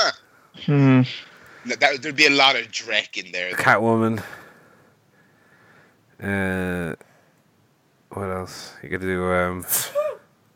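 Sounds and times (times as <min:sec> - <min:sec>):
speech: 0:00.7 - 0:04.4, 0:06.2 - 0:07.1, 0:08.2 - 0:10.2
quick sharp breathy sneeze: 0:09.7 - 0:10.2.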